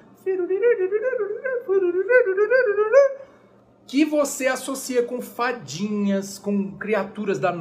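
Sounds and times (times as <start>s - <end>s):
voice vocalizing a woodwind-like melody without words: 0.3s - 3.3s
speech: 0.7s - 3.3s, 3.9s - 7.6s.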